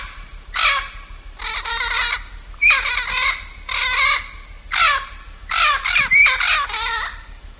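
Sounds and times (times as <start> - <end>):
blue-fronted amazon squawking: 1.4 - 7.2.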